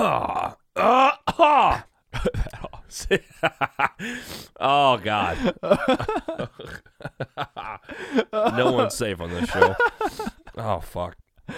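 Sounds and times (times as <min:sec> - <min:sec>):
speech: 0:00.0 - 0:11.5
phlegmy man with a cold clearing throat and hacking up phlegm: 0:00.9 - 0:02.9
laughter: 0:05.1 - 0:10.7.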